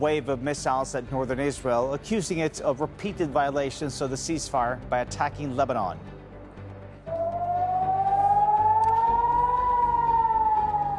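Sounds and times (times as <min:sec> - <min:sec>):
speech: 0:00.0 - 0:06.1
air raid siren wailing over a city: 0:07.0 - 0:10.9.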